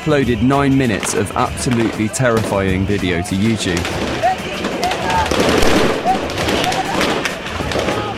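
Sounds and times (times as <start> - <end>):
speech: 0.0 - 4.2
crowd roaring and shouting at a street protest: 0.0 - 8.1
gunfire during a street protest: 3.8 - 8.1.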